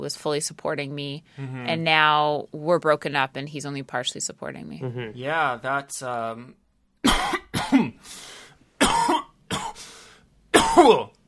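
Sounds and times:
speech: 0.0s - 7.4s, 10.8s - 11.1s
person coughing in harsh bursts: 7.0s - 8.0s, 8.8s - 9.8s, 10.6s - 11.1s.

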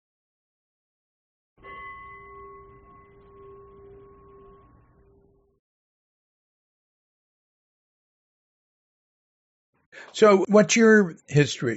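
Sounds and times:
meditation bell struck to end a meditation: 1.6s - 5.5s
speech: 9.9s - 11.7s.

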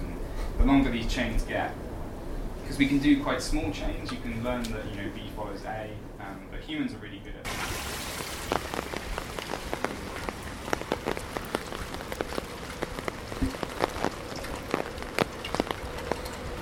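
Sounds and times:
speech: 0.6s - 1.9s, 2.7s - 8.9s
rain pattering on a hard surface: 7.5s - 16.5s.

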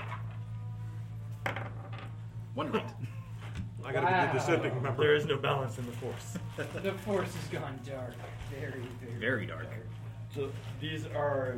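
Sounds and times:
low hum: 0.0s - 11.5s
dice clattering across a hard table surface: 1.4s - 2.2s
speech: 2.6s - 3.2s, 3.8s - 11.5s.

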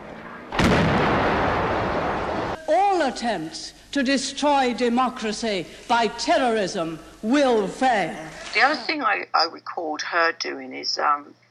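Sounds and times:
low noise: 0.0s - 11.4s
explosion: 0.5s - 2.6s
speech: 2.7s - 11.4s.

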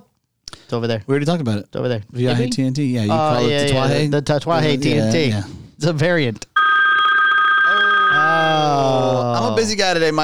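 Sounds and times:
speech: 0.7s - 6.5s, 8.3s - 10.2s
telephone ringing with a trilling electronic tone: 6.6s - 8.6s.

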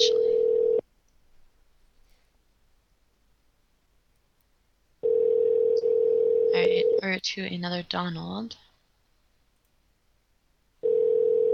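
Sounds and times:
telephone ringing tone heard over the line: 0.0s - 0.8s, 5.0s - 7.0s, 10.8s - 11.5s
speech: 7.0s - 8.6s.

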